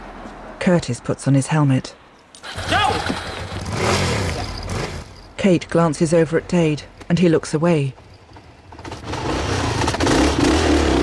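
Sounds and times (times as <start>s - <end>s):
speech: 0.6s - 4.1s, 5.4s - 8.0s
motorbike engine roaring off: 2.4s - 5.4s, 8.0s - 11.0s.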